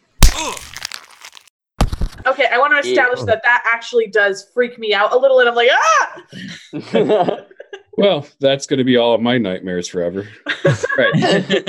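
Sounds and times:
glass jaw shattering: 0:00.0 - 0:01.4
speech: 0:00.4 - 0:00.8, 0:02.3 - 0:07.4, 0:08.0 - 0:11.6
laughter: 0:06.3 - 0:08.0, 0:10.2 - 0:11.6.

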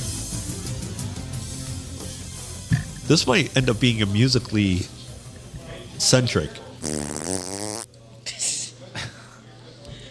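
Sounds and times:
speech: 0:03.1 - 0:05.0, 0:06.0 - 0:07.2
quiet murmuring: 0:05.1 - 0:10.0
raspberry-style fart imitation blown with the mouth: 0:06.8 - 0:07.9.

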